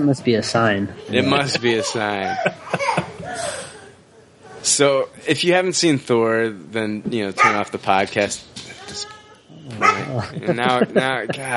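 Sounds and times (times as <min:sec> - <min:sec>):
speech: 0:00.0 - 0:03.6, 0:04.6 - 0:11.5
laughter: 0:01.1 - 0:03.7, 0:10.0 - 0:11.5
dog barking with high yappy barks and yips: 0:09.8 - 0:10.2.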